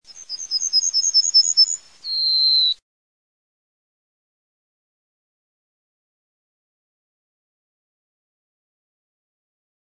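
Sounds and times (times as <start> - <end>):
zigolo golarossa bunting calling: 0.1 - 2.8.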